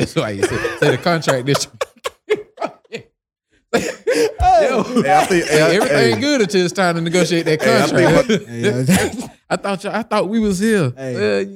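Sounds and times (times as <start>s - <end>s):
speech: 0.0s - 1.8s, 3.8s - 11.5s
laughter: 0.0s - 3.1s, 3.8s - 9.2s
person coughing with light and harsh hacking coughs: 0.3s - 2.8s, 3.8s - 6.4s, 7.6s - 9.4s.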